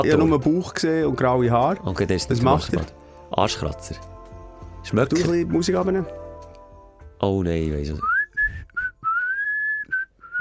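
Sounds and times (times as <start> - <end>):
speech: 0.0 - 4.1, 4.8 - 6.2, 7.2 - 8.1
person whistling imitating an old man whistling in a sauna: 8.0 - 10.3.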